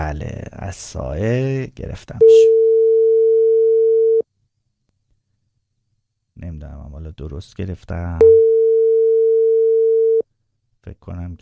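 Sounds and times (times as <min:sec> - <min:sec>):
speech: 0:00.1 - 0:02.7, 0:06.4 - 0:08.5, 0:10.8 - 0:11.3
steady mid-pitched electronic call tone of a WhatsApp phone call: 0:02.2 - 0:04.2, 0:08.2 - 0:10.2.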